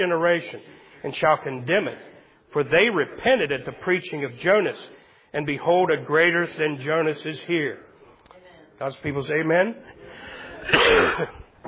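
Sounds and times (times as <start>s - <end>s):
speech: 0.0s - 7.9s, 8.8s - 11.4s
brief quiet breath: 0.6s - 1.1s, 4.9s - 5.3s, 9.9s - 10.7s
harsh throaty cough: 10.6s - 11.6s.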